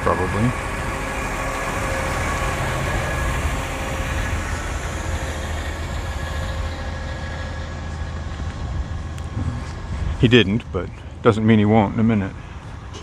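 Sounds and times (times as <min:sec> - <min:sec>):
garbage truck diesel engine running: 0:00.0 - 0:11.4
speech: 0:00.1 - 0:00.8, 0:10.2 - 0:12.4.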